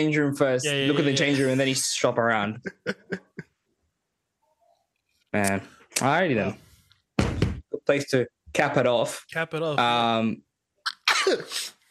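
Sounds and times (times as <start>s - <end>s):
speech: 0.0s - 3.2s, 5.3s - 6.6s, 7.9s - 10.5s, 11.2s - 11.8s
laughter: 0.6s - 3.4s
sneeze: 10.9s - 11.7s.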